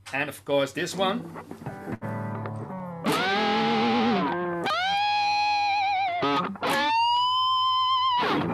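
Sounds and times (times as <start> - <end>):
speech: 0.1 - 2.0
electric guitar with heavy effects mimicking a horse neigh: 2.7 - 8.5.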